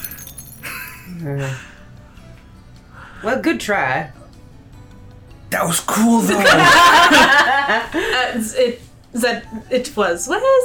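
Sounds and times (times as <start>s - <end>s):
drinking glass shattering: 0.0s - 1.1s
speech: 1.1s - 1.8s, 3.2s - 4.2s, 5.5s - 10.6s
laughter: 6.3s - 8.3s.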